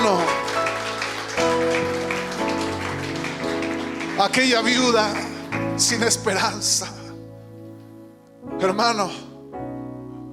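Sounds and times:
audience applauding: 0.0 - 6.4
sustained keyboard chords: 0.0 - 10.3
speech: 4.2 - 7.0, 8.6 - 9.3.

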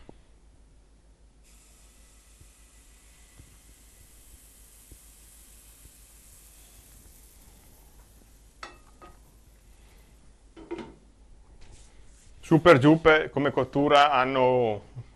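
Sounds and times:
chestnut-flour pancake batter sizzling in a hot pan over low heat: 1.4 - 10.7
speech: 12.5 - 15.0.

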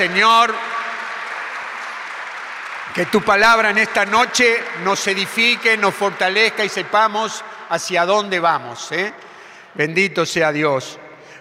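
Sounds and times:
speech: 0.0 - 0.7, 2.9 - 11.0
audience applauding: 0.0 - 7.4.

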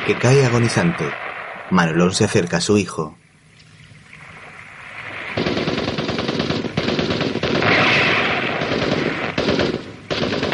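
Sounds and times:
speech: 0.0 - 3.2
sustained machine gun fire in a drama film: 5.3 - 10.5.

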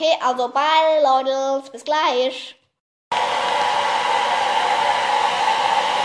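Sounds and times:
speech: 0.0 - 2.6
hair dryer blowing: 3.1 - 6.0.

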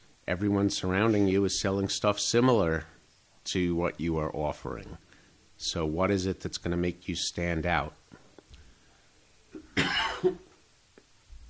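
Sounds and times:
speech: 0.3 - 5.0, 5.6 - 8.0
harsh throaty cough: 9.6 - 10.6.

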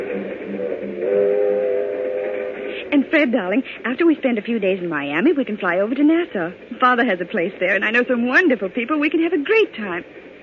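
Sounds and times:
train whistle: 0.0 - 2.9
train rumbling: 0.0 - 10.4
speech: 2.9 - 10.3.

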